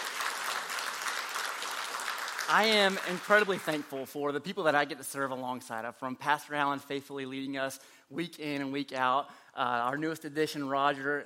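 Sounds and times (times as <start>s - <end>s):
church congregation applauding its worship music ministry: 0.0s - 4.1s
speech: 2.5s - 11.2s.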